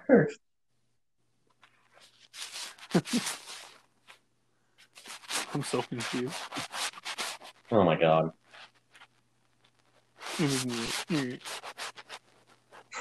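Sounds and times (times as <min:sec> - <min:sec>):
speech: 0:00.1 - 0:00.5, 0:02.4 - 0:03.4, 0:05.5 - 0:06.7, 0:07.7 - 0:08.4, 0:10.4 - 0:11.5
sandpaper rubbing on wood: 0:02.0 - 0:03.8, 0:04.9 - 0:07.7, 0:10.2 - 0:12.9.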